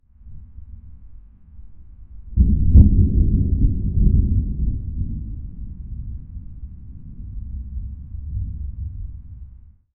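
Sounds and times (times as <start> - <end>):
continuous distant thunder in nature: 2.4 - 9.6.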